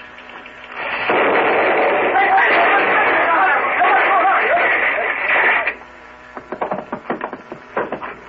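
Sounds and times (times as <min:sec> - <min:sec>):
scattered crackles and clatters: 0:00.0 - 0:08.2
muzzle-loaded gun fired out a window and exploding: 0:00.8 - 0:04.5.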